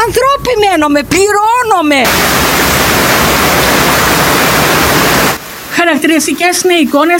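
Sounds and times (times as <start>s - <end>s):
speech: 0.1s - 2.5s, 5.8s - 7.1s
floodwater rushing down a road: 2.1s - 7.1s.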